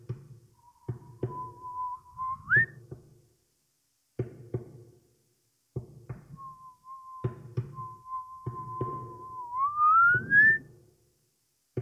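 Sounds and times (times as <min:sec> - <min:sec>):
thin whistle bending upward in pitch: 0:00.7 - 0:02.7, 0:06.4 - 0:10.6.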